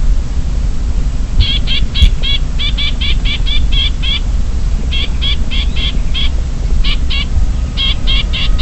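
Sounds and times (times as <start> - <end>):
low background hum: 0.0 - 8.6
Chinese grassbird subspecies sinicus alarm call in Shanli Guangxi China: 1.4 - 8.6.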